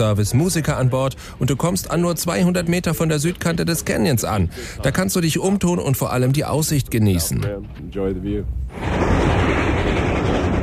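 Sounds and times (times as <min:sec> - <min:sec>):
speech: 0:00.0 - 0:09.4
steam train chugging along: 0:08.7 - 0:10.6.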